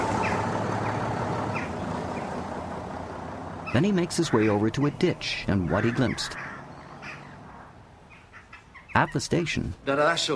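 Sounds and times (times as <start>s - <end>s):
bus pulling away from the side of a country road: 0.0s - 8.2s
road noise: 0.0s - 10.3s
speech: 3.8s - 6.5s, 9.0s - 10.3s.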